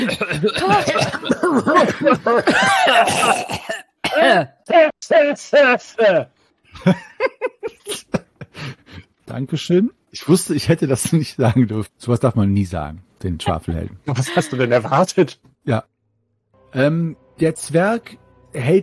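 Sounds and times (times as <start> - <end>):
speech: 0.0 - 4.4, 5.1 - 7.1, 9.3 - 15.9, 16.7 - 18.8
several people coughing and clearing their throats: 0.0 - 4.6.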